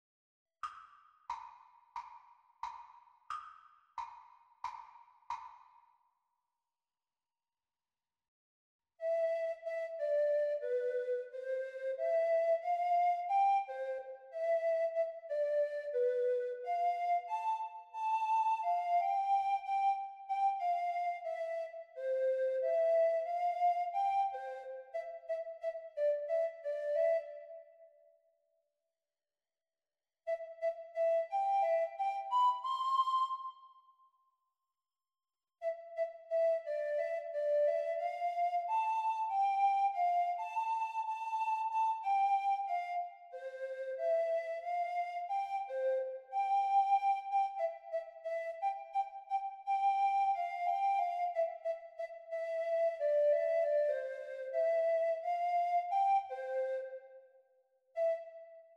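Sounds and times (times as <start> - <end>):
treble recorder playing: 9.0 - 28.0, 30.3 - 34.0, 35.6 - 57.4, 58.0 - 58.7.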